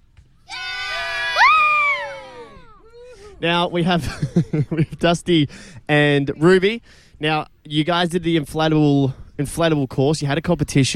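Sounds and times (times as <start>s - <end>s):
small group cheering and whooping: 0.4s - 3.1s
laughter: 2.4s - 5.2s
speech: 3.4s - 10.9s.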